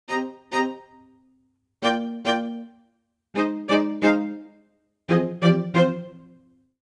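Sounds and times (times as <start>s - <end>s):
mischievous C minor string quartet ostinato: 0.1s - 1.1s, 1.8s - 2.8s, 3.4s - 6.4s.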